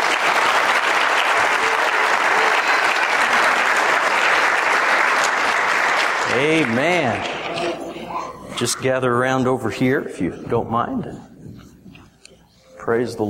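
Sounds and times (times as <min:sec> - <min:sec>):
crowd applauding: 0:00.0 - 0:07.9
speech: 0:06.4 - 0:07.7, 0:08.6 - 0:11.3, 0:12.9 - 0:13.2.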